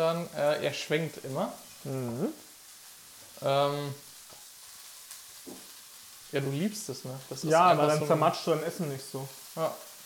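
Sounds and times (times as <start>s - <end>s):
speech: 0.0s - 2.5s, 3.4s - 4.0s, 6.3s - 9.9s
food frying in a pan: 0.0s - 10.0s.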